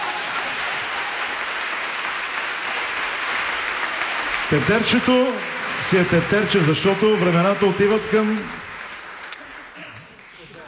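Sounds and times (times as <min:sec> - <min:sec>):
crowd applauding: 0:00.0 - 0:10.6
speech: 0:04.5 - 0:08.6.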